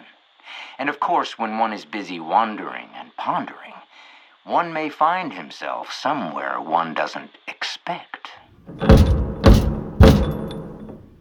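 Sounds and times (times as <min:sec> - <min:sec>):
speech: 0:00.8 - 0:03.8, 0:04.4 - 0:09.1
firm knocks on a door: 0:08.7 - 0:11.0.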